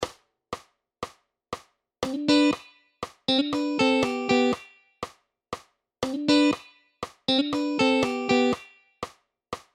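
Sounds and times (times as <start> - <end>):
G7 riff in sixths: 2.0 - 2.7, 3.3 - 4.7, 6.0 - 6.7, 7.3 - 8.7.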